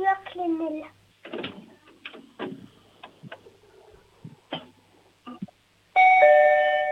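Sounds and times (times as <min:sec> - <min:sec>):
clicks and knocks: 0:01.2 - 0:03.5
loud electronic doorbell chiming: 0:06.0 - 0:06.9.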